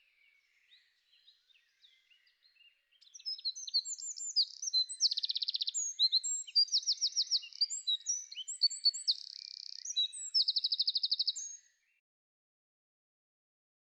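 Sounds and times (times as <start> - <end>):
Eurasian wren singing with rattling trills: 0.6 - 11.6.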